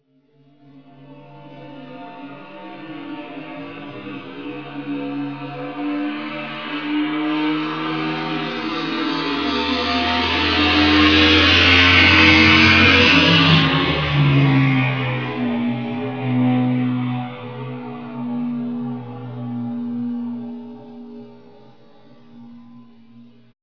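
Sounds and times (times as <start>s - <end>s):
motorcycle engine: 3.2s - 21.7s.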